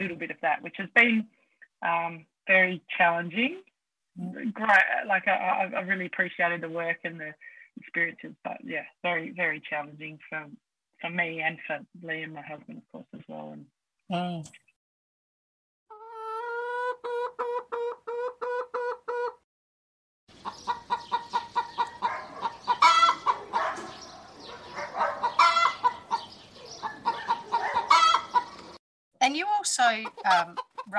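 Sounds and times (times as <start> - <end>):
speech: 0.0 - 14.6, 29.9 - 30.9
flock of chickens clucking and squawking on a regenerative egg farm: 15.9 - 19.4, 20.3 - 28.8, 29.6 - 30.9.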